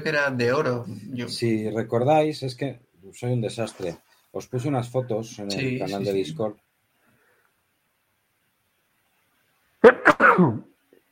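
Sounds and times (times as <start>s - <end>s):
speech: 0.0s - 6.6s, 10.4s - 10.7s
person sneezing: 9.9s - 10.7s.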